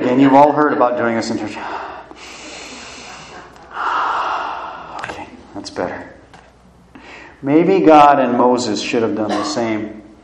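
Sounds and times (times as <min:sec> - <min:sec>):
speech: 0:00.1 - 0:01.9, 0:05.7 - 0:06.2, 0:07.4 - 0:10.0
deep breath drawn in through the nose and let out slowly: 0:01.6 - 0:05.0.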